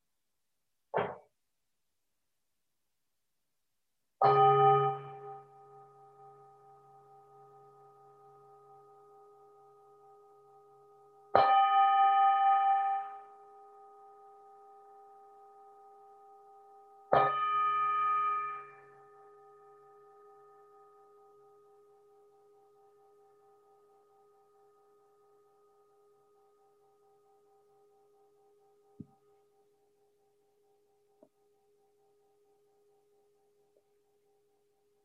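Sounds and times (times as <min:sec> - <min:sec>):
meditation bell struck and ringing: 0:04.2 - 0:33.6.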